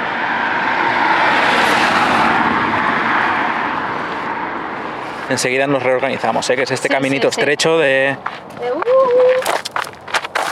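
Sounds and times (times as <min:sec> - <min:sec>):
car passing by on narrow street: 0:00.0 - 0:07.8
speech: 0:05.3 - 0:09.7.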